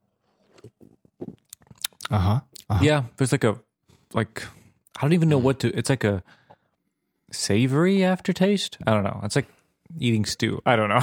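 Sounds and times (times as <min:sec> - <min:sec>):
person slurping an IPA: 0:00.2 - 0:02.1
wet mouth and swallowing sounds: 0:00.3 - 0:02.7
speech: 0:02.1 - 0:06.4, 0:07.3 - 0:11.0.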